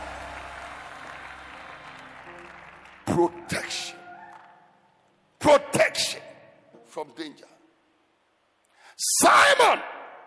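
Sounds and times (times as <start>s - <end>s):
large crowd clapping: 0.0s - 4.7s
speech: 3.1s - 3.7s, 5.4s - 5.8s, 7.0s - 7.5s, 9.2s - 9.9s.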